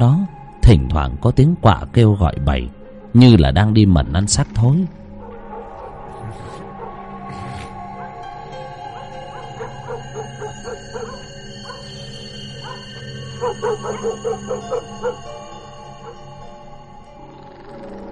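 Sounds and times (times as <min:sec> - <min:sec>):
speech: 0:00.0 - 0:05.0
dogs barking at night: 0:05.0 - 0:16.4.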